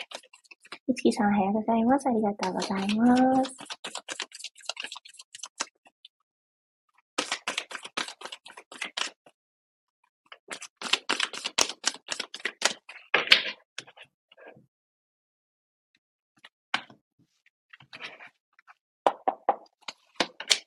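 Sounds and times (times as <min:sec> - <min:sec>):
speech: 0:00.9 - 0:03.7
advice cards being drawn from a deck: 0:02.4 - 0:05.7, 0:07.2 - 0:09.2, 0:10.4 - 0:13.5.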